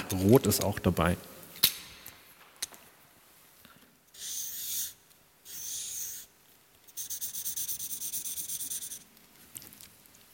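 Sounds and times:
speech: 0:00.1 - 0:01.4
red flipchart marker scribbling on paper, colouring in a heart: 0:04.1 - 0:06.3, 0:06.9 - 0:09.1.

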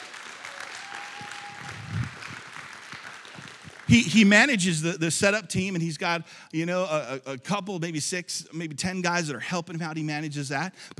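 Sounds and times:
audience applause: 0:00.0 - 0:04.4
speech: 0:03.9 - 0:10.9.

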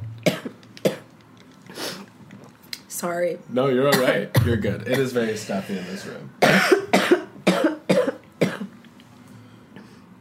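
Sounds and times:
speech: 0:03.0 - 0:06.6
harsh coughing: 0:03.9 - 0:05.3, 0:06.4 - 0:08.7.

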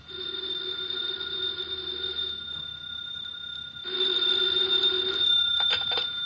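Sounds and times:
old-fashioned telephone bell ringing: 0:00.0 - 0:06.2.

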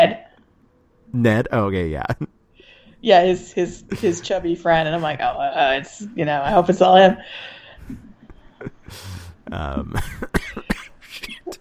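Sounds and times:
strained vocal noises: 0:01.1 - 0:02.2, 0:08.7 - 0:10.2
speech: 0:01.1 - 0:02.4, 0:03.0 - 0:10.5
person coughing harshly: 0:09.8 - 0:11.5.

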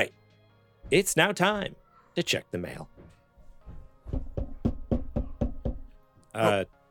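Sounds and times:
speech: 0:00.9 - 0:03.0, 0:06.4 - 0:06.8
knocking on a monitor: 0:03.7 - 0:05.9.

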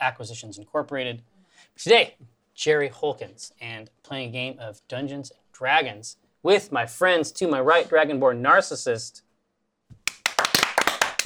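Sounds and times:
speech: 0:00.0 - 0:09.2
single person hand clapping: 0:10.0 - 0:11.2.

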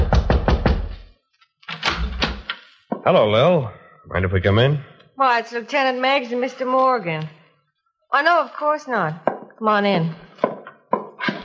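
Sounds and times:
knocking on the wooden door of an apartment: 0:00.0 - 0:01.0
speech: 0:03.0 - 0:07.4, 0:08.1 - 0:10.5.

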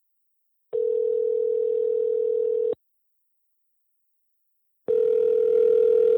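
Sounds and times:
telephone ringback tone on caller's end: 0:00.8 - 0:02.8, 0:04.9 - 0:06.1.

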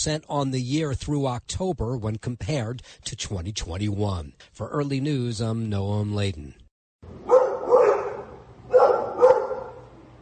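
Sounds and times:
speech: 0:00.0 - 0:06.6
dog barking: 0:07.2 - 0:09.9.

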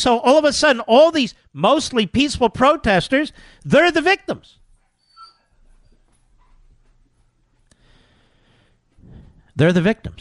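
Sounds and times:
speech: 0:00.0 - 0:04.6, 0:09.6 - 0:10.1
dog frightened by thunder whimpering: 0:04.9 - 0:06.1
dog's thin high whines and yips: 0:04.9 - 0:06.2.

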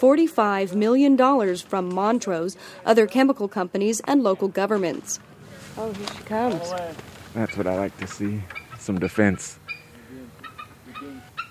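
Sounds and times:
speech: 0:00.0 - 0:09.6
eagle low clucking note: 0:06.2 - 0:11.4
eagle shrill squealing and whistling calls: 0:08.5 - 0:08.8, 0:09.6 - 0:11.4.

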